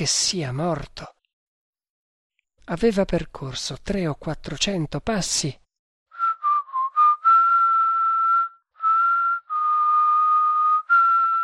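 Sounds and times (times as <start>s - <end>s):
speech: 0.0s - 1.2s, 2.7s - 5.6s
person whistling a slow melancholy tune alone: 6.1s - 11.4s.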